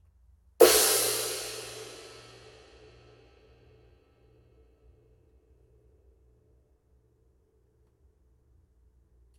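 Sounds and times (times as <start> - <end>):
20in light flat ride cymbal: 0.6 - 3.4.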